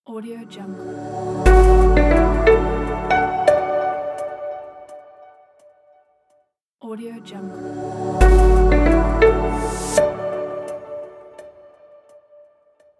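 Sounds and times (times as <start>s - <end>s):
short light piano logo: 1.5s - 4.8s, 7.9s - 11.3s.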